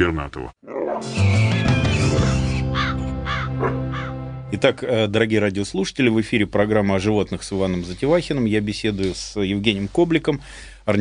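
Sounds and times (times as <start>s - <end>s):
speech: 0.0s - 2.4s, 3.6s - 3.8s, 4.5s - 10.9s
ravens calling with hoarse croaks and harsh caws: 0.6s - 4.3s.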